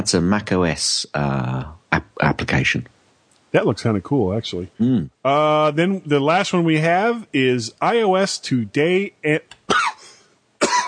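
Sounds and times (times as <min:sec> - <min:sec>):
speech: 0:00.0 - 0:02.9, 0:03.5 - 0:09.6
person coughing: 0:09.7 - 0:10.8.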